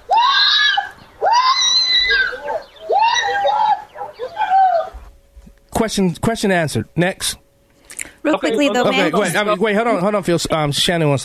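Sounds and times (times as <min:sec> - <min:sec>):
woman screaming during an attack: 0:00.0 - 0:05.0
speech: 0:05.8 - 0:07.4, 0:08.2 - 0:11.2.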